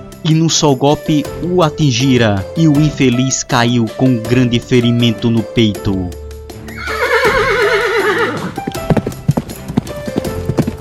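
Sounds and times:
speech: 0.2 - 6.2
horse whinnying in a battle: 6.6 - 9.1
horse hooves clopping in a battle: 6.6 - 10.7.

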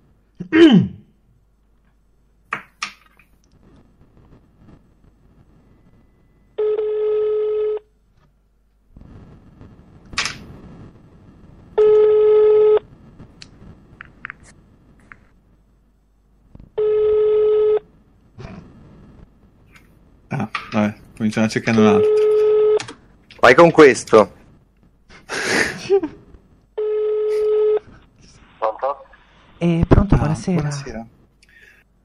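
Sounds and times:
low noise: 0.0 - 32.0
speech: 0.5 - 0.9, 21.3 - 22.3, 23.4 - 24.4, 30.4 - 31.2
ringing tone of an outgoing telephone call: 6.0 - 7.9, 11.8 - 12.8, 16.8 - 17.9, 21.8 - 22.8, 26.8 - 27.9.

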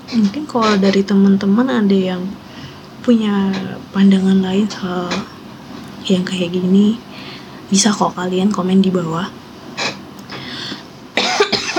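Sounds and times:
speech: 0.1 - 2.4, 3.1 - 5.3, 6.0 - 7.1, 7.7 - 9.4
person coughing: 11.2 - 11.7.

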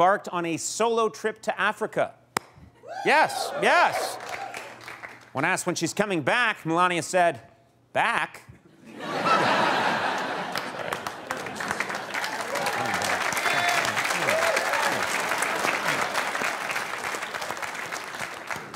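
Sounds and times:
speech: 0.0 - 2.2, 2.9 - 4.4, 5.3 - 9.0
studio audience applause: 3.0 - 5.3, 9.6 - 18.7
studio audience laughing and chuckling: 8.7 - 17.4.

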